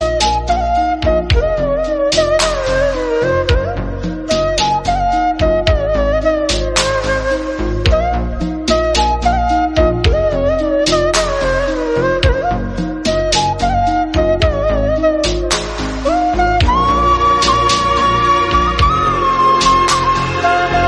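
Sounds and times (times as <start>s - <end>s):
flute background music ringtone: 0.0s - 20.8s.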